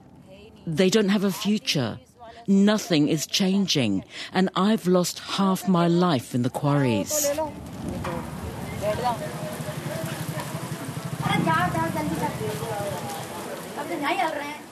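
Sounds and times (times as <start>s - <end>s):
speech: 0.6s - 8.1s, 8.9s - 9.5s, 11.5s - 13.2s, 13.8s - 14.6s
heavy rain pouring onto a street: 7.3s - 14.6s.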